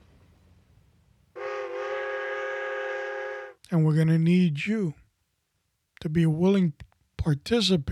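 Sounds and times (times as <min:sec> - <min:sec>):
loud, steady, chord-like train whistle blast: 0:01.4 - 0:03.6
speech: 0:03.7 - 0:05.0, 0:06.0 - 0:07.9.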